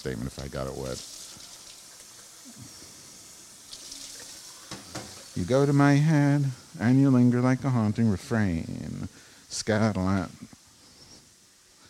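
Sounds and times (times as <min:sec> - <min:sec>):
speech: 0:00.0 - 0:01.4, 0:05.4 - 0:10.5
tap water running for a neti pot nasal rinse: 0:00.0 - 0:08.6.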